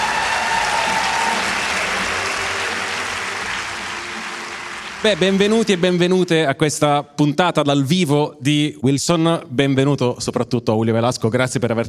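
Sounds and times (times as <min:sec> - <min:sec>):
large audience applause: 0:00.0 - 0:06.4
speech: 0:05.0 - 0:11.8.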